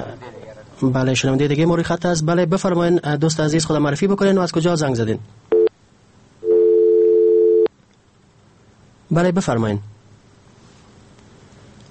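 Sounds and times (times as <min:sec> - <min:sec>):
speech: 0:00.0 - 0:05.5, 0:09.1 - 0:09.9
telephone busy tone beep after a dropped call: 0:05.5 - 0:05.7, 0:06.4 - 0:07.7.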